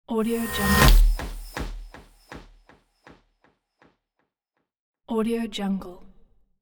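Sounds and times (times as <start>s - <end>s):
delayed transition sweep hits: 0.2s - 2.4s.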